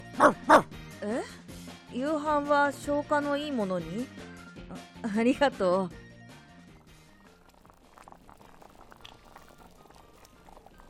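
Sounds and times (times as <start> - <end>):
speech: 0.2 - 0.8, 2.3 - 4.3, 5.1 - 6.0
pot of rice porridge simmering and bubbling on a kitchen stove: 6.6 - 10.8.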